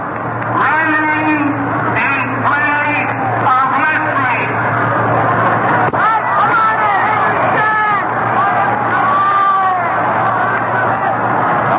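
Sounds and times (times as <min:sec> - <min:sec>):
constant low hum: 0:00.0 - 0:11.7
large baseball stadium crowd yelling and cheering: 0:00.0 - 0:11.7.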